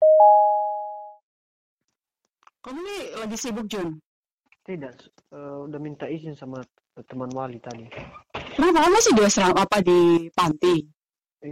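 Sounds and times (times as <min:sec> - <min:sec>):
outgoing call ringing tone on a mobile phone: 0:00.0 - 0:01.1
speech: 0:02.7 - 0:04.1, 0:04.7 - 0:11.5.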